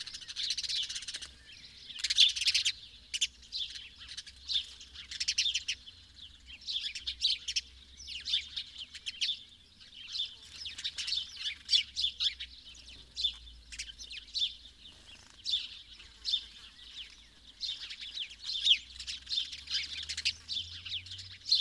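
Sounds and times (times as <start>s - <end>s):
house sparrow chirps in a busy chatter: 0.0s - 21.5s.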